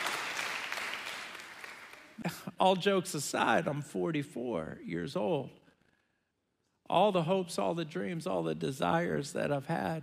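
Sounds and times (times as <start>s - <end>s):
audience clapping hands at a sermon: 0.0s - 2.2s
speech: 2.2s - 5.6s, 6.9s - 10.0s.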